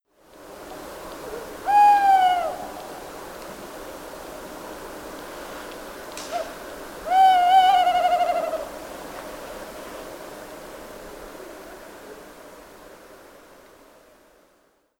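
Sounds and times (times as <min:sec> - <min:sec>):
tawny owl Strix aluco whistling: 0:01.6 - 0:02.7, 0:07.1 - 0:08.7.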